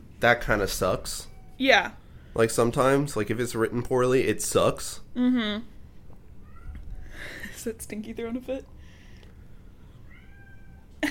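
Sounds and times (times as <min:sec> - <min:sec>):
speech: 0:00.2 - 0:05.7, 0:07.2 - 0:08.8
household cat meowing: 0:06.4 - 0:07.1, 0:09.9 - 0:11.0.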